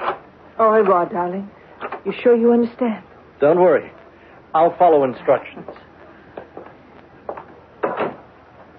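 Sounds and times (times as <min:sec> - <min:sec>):
speech: 0:00.6 - 0:05.8
short wooden knocks and clatters: 0:07.3 - 0:08.2.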